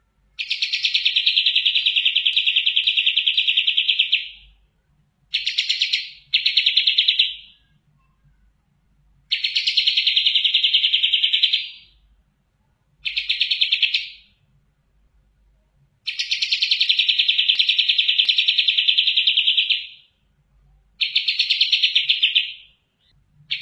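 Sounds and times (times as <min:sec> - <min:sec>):
kapas tembak bird singing: 0:00.0 - 0:04.6, 0:05.3 - 0:08.4, 0:09.3 - 0:12.0, 0:13.0 - 0:14.4, 0:16.0 - 0:20.2, 0:20.9 - 0:23.6.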